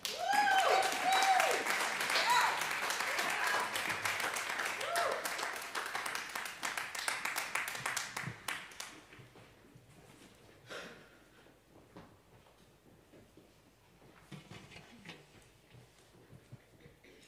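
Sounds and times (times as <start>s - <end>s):
people cheering: 0.0s - 7.0s
crowd applauding: 0.0s - 9.0s.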